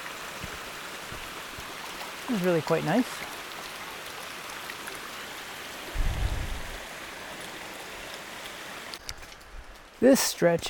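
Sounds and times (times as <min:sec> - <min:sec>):
creek beside a hiking trail flowing: 0:00.0 - 0:10.6
speech: 0:02.3 - 0:03.3, 0:10.0 - 0:10.6
low rumble: 0:06.0 - 0:06.8.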